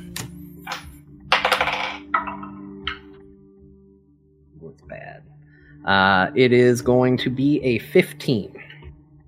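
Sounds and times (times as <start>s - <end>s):
dice clattering across a hard table: 0.7s - 2.4s
speech: 4.9s - 8.6s.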